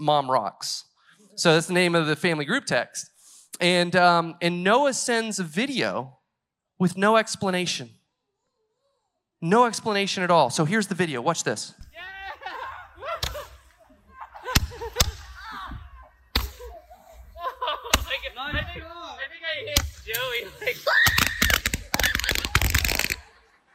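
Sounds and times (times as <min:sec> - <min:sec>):
speech: 0:00.0 - 0:06.2, 0:06.8 - 0:08.0, 0:09.4 - 0:13.2
excited voices: 0:11.9 - 0:23.7
laughter: 0:12.1 - 0:15.4, 0:16.6 - 0:18.3, 0:21.9 - 0:23.7
sharp slapping cracks: 0:13.2 - 0:13.7, 0:14.4 - 0:15.4, 0:16.3 - 0:16.7, 0:17.9 - 0:18.3, 0:19.8 - 0:20.3, 0:21.0 - 0:23.2
boy letting out a loud high-pitched scream: 0:15.3 - 0:16.8, 0:20.6 - 0:22.7.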